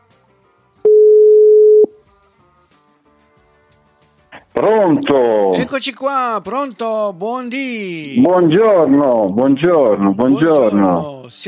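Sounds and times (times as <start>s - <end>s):
ringback tone from a phone line on an outgoing call: 0.8s - 2.0s
speech: 4.6s - 11.4s.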